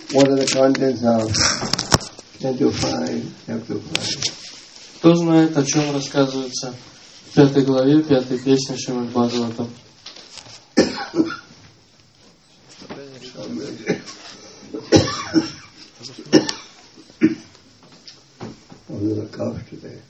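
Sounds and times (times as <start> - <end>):
speech: 0.1 - 1.8, 2.4 - 4.4, 5.0 - 9.8
person with a slight cough coughing during a lecture: 10.8 - 11.5, 13.8 - 14.2, 14.8 - 17.5.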